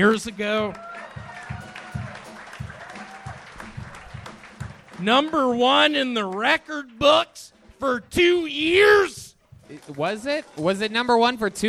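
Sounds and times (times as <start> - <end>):
speech: 0.0 - 1.0, 5.0 - 11.6
thumping beat: 0.0 - 7.1, 7.7 - 9.9
crowd applause: 0.6 - 5.4.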